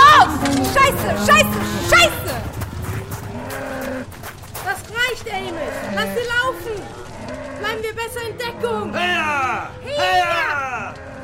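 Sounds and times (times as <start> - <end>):
herd of cattle mooing and lowing: 0.0 - 2.5, 3.2 - 4.1, 5.4 - 11.2
steady rumbling background: 0.0 - 8.1.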